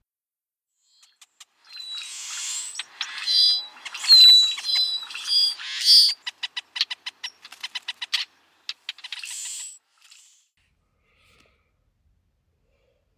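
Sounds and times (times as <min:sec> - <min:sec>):
Brewer's blackbird calls: 0:01.0 - 0:10.2.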